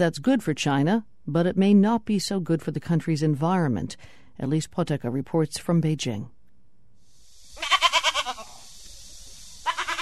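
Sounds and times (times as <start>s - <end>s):
speech: 0.0s - 6.4s
goat bleating on a small family farm near Beijing China: 7.6s - 8.6s, 9.6s - 10.0s.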